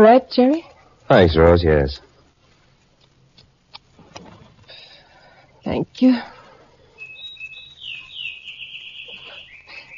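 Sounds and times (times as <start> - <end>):
speech: 0.0 - 2.1, 5.7 - 6.4
small songbird chirping: 6.8 - 9.9.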